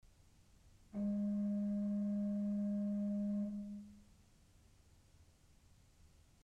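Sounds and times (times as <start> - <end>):
pipe organ principal four-foot stop playing G sharp: 1.0 - 3.9.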